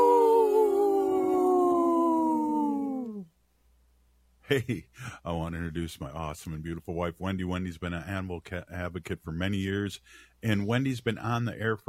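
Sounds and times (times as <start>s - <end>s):
wolf howling: 0.0s - 3.3s
speech: 4.5s - 11.8s.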